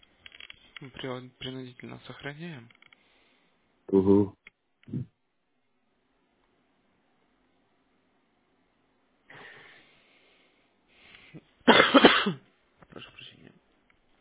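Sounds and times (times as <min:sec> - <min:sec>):
speech: 0:00.8 - 0:02.8, 0:03.9 - 0:04.4
person coughing harshly: 0:11.7 - 0:12.4.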